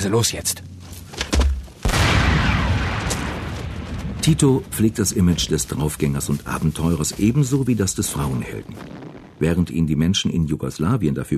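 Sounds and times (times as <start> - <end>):
speech: 0.0 - 1.0, 4.2 - 11.3
bridge blown up in a wartime demolition: 1.8 - 9.8
heavy roaring rumble of a bridge explosion: 1.8 - 10.0.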